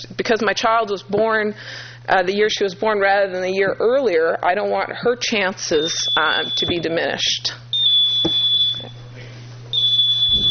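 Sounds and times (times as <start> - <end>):
low hum in an indoor room: 0.0 - 10.4
speech: 0.2 - 7.6
shrill high-pitched electronic alarm beeping: 5.7 - 7.0, 7.7 - 9.1, 9.7 - 10.4.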